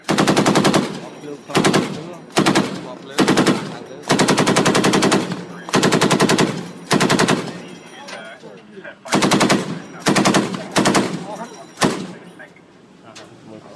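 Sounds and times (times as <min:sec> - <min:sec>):
naval ships firing live rounds at targets at sea: 0:00.0 - 0:07.6, 0:09.1 - 0:12.1.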